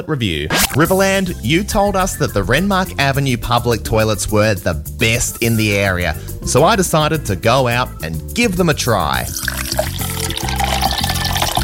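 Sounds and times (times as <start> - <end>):
speech: 0.0 - 10.6
water pouring into a big glass: 9.2 - 11.6.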